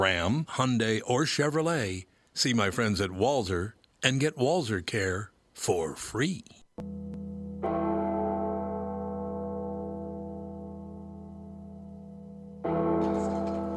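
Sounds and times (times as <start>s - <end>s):
speech: 0.0s - 7.4s
deep resonant church bell tolling in a song intro: 6.8s - 13.7s.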